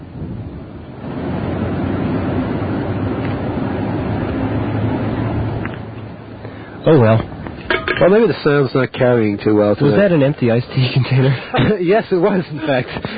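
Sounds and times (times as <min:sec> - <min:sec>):
strong wind buffeting a microphone up high: 0:00.0 - 0:05.7
speech: 0:06.8 - 0:07.3, 0:08.0 - 0:13.1.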